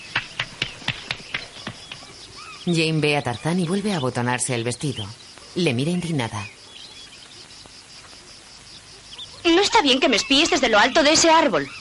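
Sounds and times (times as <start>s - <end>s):
chimpanzee clapping its hands: 0.0s - 2.2s
speech: 2.6s - 6.6s, 9.8s - 11.7s.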